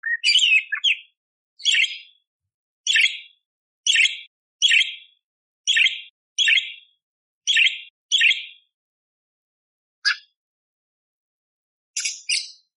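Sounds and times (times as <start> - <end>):
budgerigar giving sharp scratchy chirps and chatter: 0.0 - 2.1, 2.9 - 3.3, 3.9 - 5.1, 5.7 - 6.8, 7.5 - 8.6, 10.0 - 10.3.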